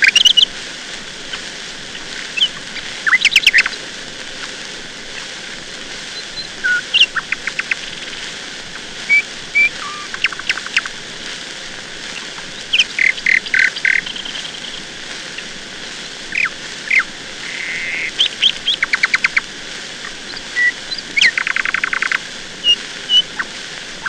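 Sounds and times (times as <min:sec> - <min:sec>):
nightingale singing: 0:00.0 - 0:00.5, 0:02.4 - 0:03.8, 0:06.2 - 0:08.2, 0:09.1 - 0:10.9, 0:12.2 - 0:14.8, 0:15.4 - 0:24.0
steady background hiss: 0:00.0 - 0:24.0.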